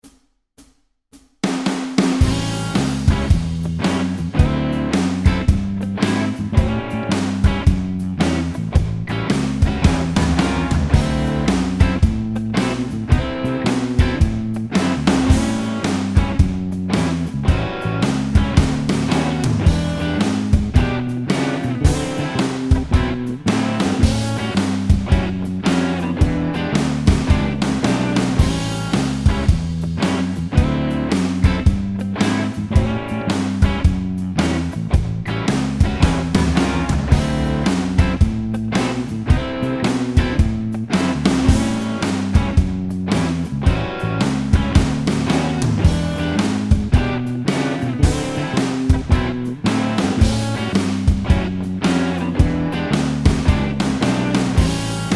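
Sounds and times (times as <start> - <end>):
blues rock twelve-bar blues backing track in A7: 1.4 - 55.1.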